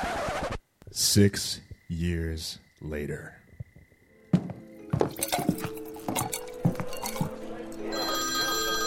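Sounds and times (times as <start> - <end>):
speech: 1.1 - 3.4
dull thumps and clattering knocks of objects being handled: 4.3 - 6.9
telephone ringing with a bright metallic bell: 7.9 - 8.8.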